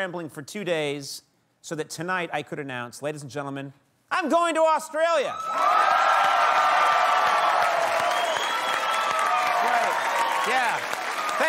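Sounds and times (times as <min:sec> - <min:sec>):
speech: 0:00.0 - 0:06.2
studio audience whoops and shouts: 0:05.3 - 0:11.4
large studio audience clapping: 0:05.5 - 0:11.4.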